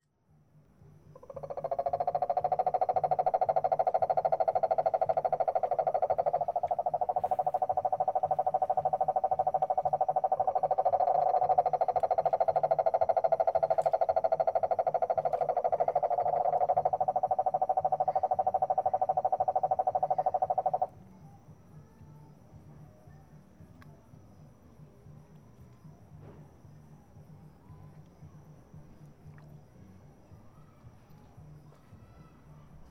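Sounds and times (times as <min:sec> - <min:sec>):
cane toads calling in San Jose Costa Rica: 0:01.1 - 0:21.0.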